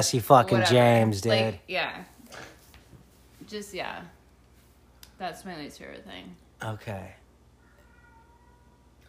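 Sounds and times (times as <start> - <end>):
speech: 0.0 - 2.1, 3.5 - 4.2, 5.2 - 7.2
low steady hum: 0.0 - 9.0
faint cat meow: 7.6 - 9.0.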